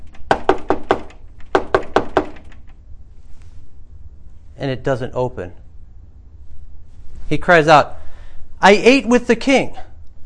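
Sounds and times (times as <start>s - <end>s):
firm knocks on a wooden gate: 0.3s - 2.6s
speech: 4.6s - 5.6s, 7.3s - 8.0s, 8.6s - 9.9s.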